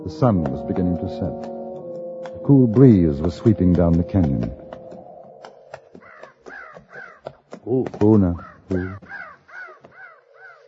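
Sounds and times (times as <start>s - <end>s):
speech: 0.0s - 1.6s, 2.2s - 4.6s, 7.7s - 9.2s
crows cawing in a canyon at sunset: 4.6s - 10.6s.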